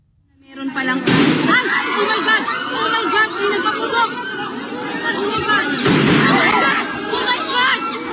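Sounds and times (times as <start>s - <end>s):
crowd commotion: 0.4s - 8.1s
people shouting: 0.8s - 8.1s
gunshots during a manhunt at the Philippine Senate: 1.0s - 1.7s, 5.8s - 6.7s.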